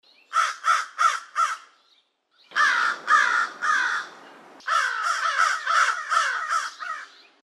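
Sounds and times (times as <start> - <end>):
American crow calling: 0.3 - 1.8, 2.5 - 7.4.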